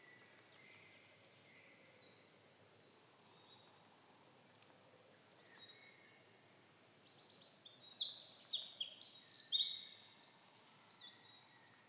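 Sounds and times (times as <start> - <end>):
Eurasian wren Troglodytes troglodytes singing high ringing notes and trills: 6.8 - 11.5.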